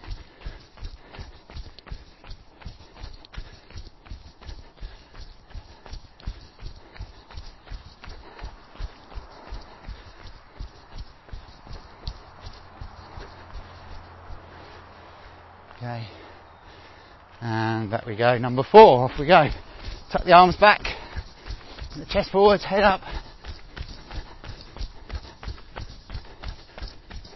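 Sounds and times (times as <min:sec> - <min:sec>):
footfalls of someone jogging in place with high knees on the balls of the feet: 0:00.0 - 0:27.3
speech: 0:15.8 - 0:16.2, 0:17.4 - 0:20.9, 0:22.1 - 0:23.2.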